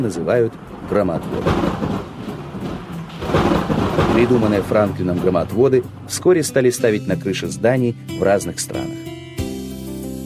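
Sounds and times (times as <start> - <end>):
speech: 0.0 - 2.3, 4.2 - 9.1
steady rain: 0.1 - 4.8
deep rumble of thunder: 0.1 - 6.2.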